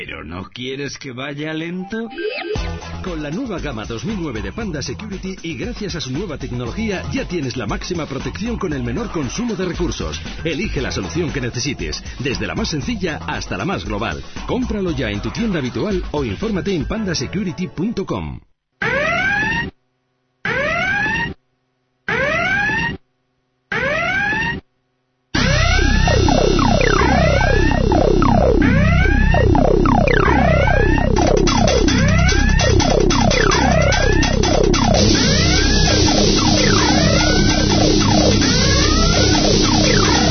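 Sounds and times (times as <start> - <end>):
speech: 0.0 - 18.5
alarm siren: 18.8 - 19.7, 20.4 - 21.4, 22.1 - 23.0, 23.7 - 24.6, 25.4 - 40.3.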